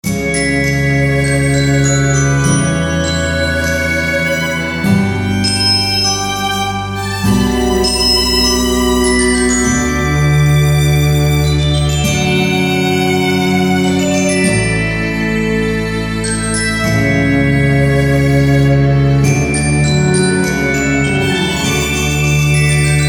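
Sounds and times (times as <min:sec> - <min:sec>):
moderato music piece in D major: 0:00.0 - 0:23.0.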